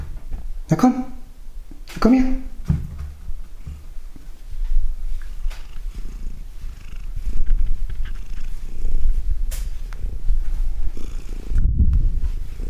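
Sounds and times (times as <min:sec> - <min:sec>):
speech: 0:00.7 - 0:01.2, 0:02.0 - 0:02.5
soft rustling: 0:02.9 - 0:12.6
domestic cat purring: 0:05.2 - 0:12.6.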